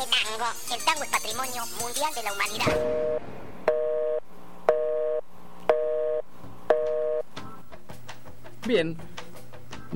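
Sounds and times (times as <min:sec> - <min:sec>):
speech: 0:00.2 - 0:03.4, 0:08.6 - 0:09.2
telephone busy signal on an out-of-order radio station line: 0:02.9 - 0:07.2.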